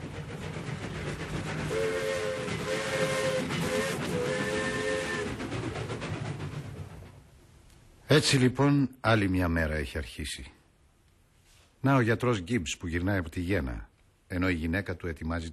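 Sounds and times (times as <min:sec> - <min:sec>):
train rumbling past: 0:00.0 - 0:08.6
long harmonic train whistle blasts: 0:01.7 - 0:05.4
speech: 0:08.1 - 0:10.6, 0:11.8 - 0:15.5.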